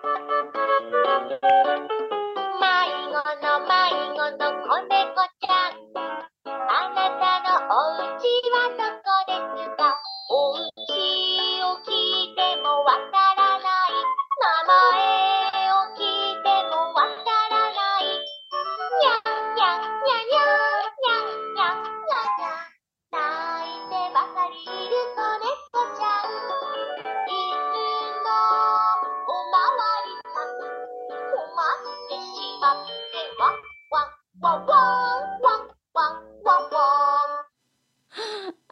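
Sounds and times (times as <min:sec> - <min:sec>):
Japanese children's song: 0:00.0 - 0:37.6.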